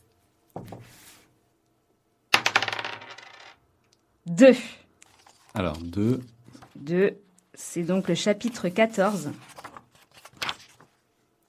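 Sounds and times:
dice thrown and rolling on a tabletop: 2.3 - 3.6
speech: 4.3 - 4.8, 5.6 - 9.5.

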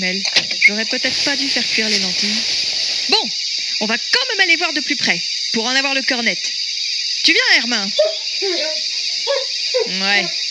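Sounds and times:
speech: 0.0 - 6.6, 7.2 - 10.4
steady hiss: 0.6 - 10.4
barking monkey yelping in short rising cries: 7.9 - 10.4.

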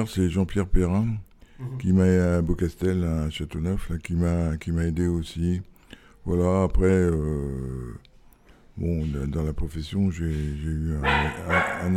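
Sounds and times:
speech: 0.0 - 8.1, 8.8 - 11.9
guard dog barking: 11.0 - 11.9.

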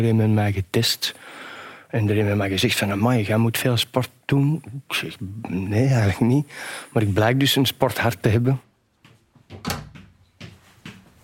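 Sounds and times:
speech: 0.0 - 8.7
wooden door opening and closing with knocks and clunks: 9.4 - 11.0.

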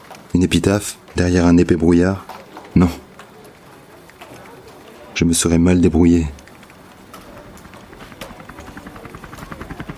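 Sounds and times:
speech: 0.4 - 3.0, 5.2 - 6.4
helicopter rotor beating overhead: 5.4 - 9.9.

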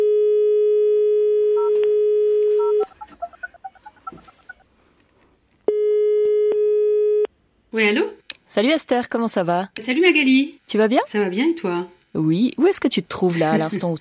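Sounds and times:
steady electronic telephone call tone: 0.0 - 4.6, 5.7 - 7.3
speech: 7.8 - 13.9.

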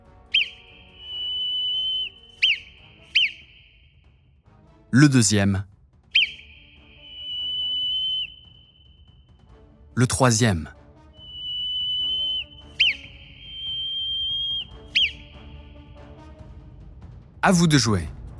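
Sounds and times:
whistle signals in Morse code: 0.0 - 4.2, 6.1 - 9.5, 11.1 - 16.2
speech: 4.9 - 5.7, 10.0 - 10.8, 17.4 - 18.2.

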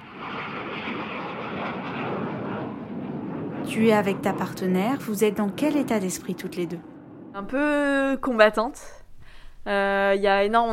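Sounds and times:
airplane engines roaring while taking off: 0.0 - 7.7
speech: 3.7 - 9.0, 9.6 - 10.7.

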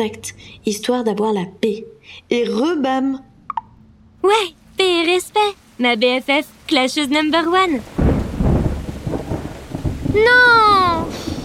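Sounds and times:
speech: 0.0 - 3.3, 4.2 - 8.0, 10.1 - 10.6
steady rain: 4.2 - 11.4
low rolling thunder rumbling: 6.9 - 11.4.

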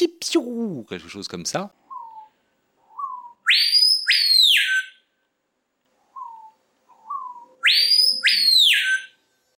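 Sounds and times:
speech: 0.0 - 1.8
screaming piha giving loud ringing whistled calls: 2.9 - 5.0, 6.2 - 9.2.

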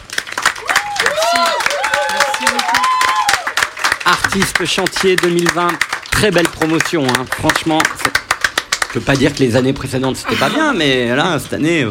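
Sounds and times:
audience applause: 0.0 - 10.1
excited whoops and cheering voices: 0.6 - 3.6
speech: 4.1 - 8.2, 8.9 - 11.8.

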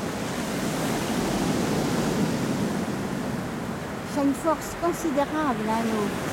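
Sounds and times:
rolling surf of ocean waves: 0.0 - 6.3
speech: 4.2 - 6.3.

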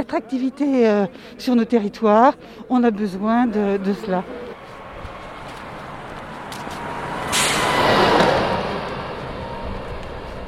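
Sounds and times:
speech: 0.0 - 4.4
steady roar of road traffic on a fast road: 1.1 - 10.4
vehicle passing: 3.1 - 10.4.

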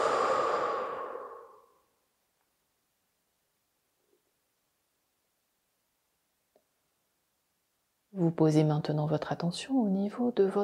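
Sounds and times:
deep breath blown out during a sophrology relaxation session: 0.0 - 1.9
speech: 8.2 - 10.6.

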